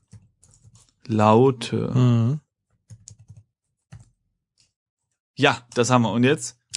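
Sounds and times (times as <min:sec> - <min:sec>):
typing on a computer keyboard: 0:00.0 - 0:01.0, 0:02.7 - 0:04.8
speech: 0:01.1 - 0:02.4, 0:05.4 - 0:06.6.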